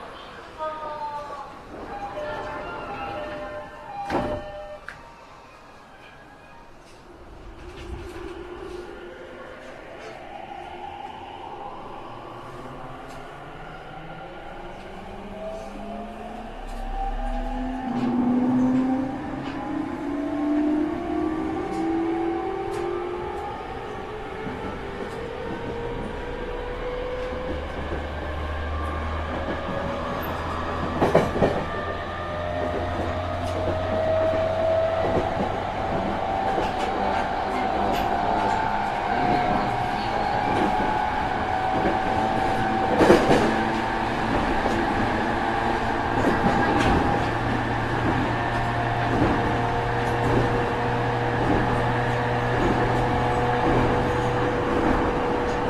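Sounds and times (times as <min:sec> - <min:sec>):
E231 local train: 0:00.0 - 0:55.6.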